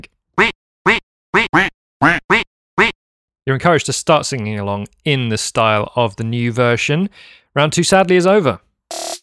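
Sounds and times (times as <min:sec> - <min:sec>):
duck quacking: 0:00.0 - 0:03.0
speech: 0:03.5 - 0:09.0.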